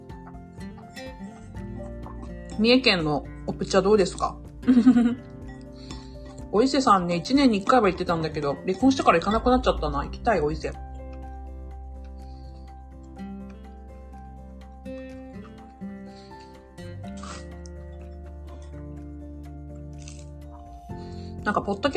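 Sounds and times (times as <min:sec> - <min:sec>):
wet chewing while eating breakfast: 0:00.0 - 0:03.3, 0:10.7 - 0:21.0
speech: 0:02.6 - 0:05.3, 0:06.5 - 0:10.8, 0:21.5 - 0:21.9.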